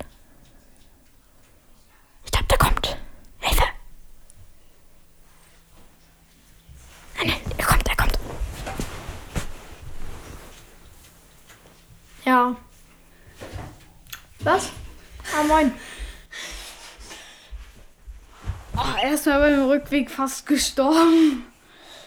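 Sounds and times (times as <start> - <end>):
person whispering: 2.2 - 3.8, 7.1 - 8.3
speech: 14.5 - 14.8, 15.4 - 15.8, 19.2 - 21.5.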